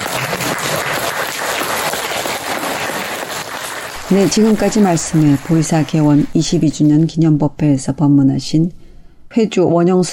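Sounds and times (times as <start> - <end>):
crowd applauding: 0.0 - 6.4
speech: 4.1 - 10.1.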